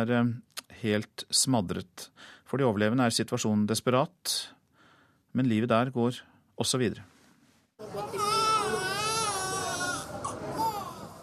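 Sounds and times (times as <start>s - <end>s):
speech: 0.0s - 4.6s, 5.3s - 7.1s, 7.8s - 8.3s
newborn baby crying: 7.8s - 11.2s.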